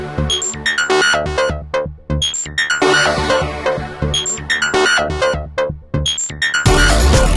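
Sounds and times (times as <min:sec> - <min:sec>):
triangle ringtone on a Nokia 7100 Supernova: 0:00.3 - 0:01.5, 0:02.2 - 0:03.5, 0:04.1 - 0:05.5, 0:06.1 - 0:07.2.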